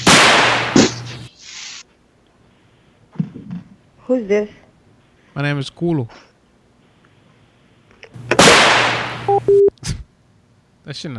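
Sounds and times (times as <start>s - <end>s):
firework bang: 0.0s - 1.1s, 8.4s - 9.2s
speech: 4.1s - 4.6s, 5.4s - 6.3s, 10.9s - 11.1s.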